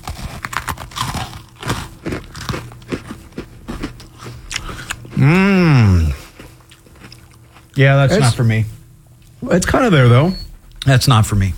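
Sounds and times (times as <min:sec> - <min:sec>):
open-mouth wet smacking chewing of chicken and waffles: 0:00.0 - 0:05.2, 0:06.0 - 0:07.8
crunchy, crinkly bites of chicken and waffles: 0:00.0 - 0:07.8
speech: 0:05.2 - 0:05.9, 0:07.8 - 0:08.8, 0:09.4 - 0:11.5.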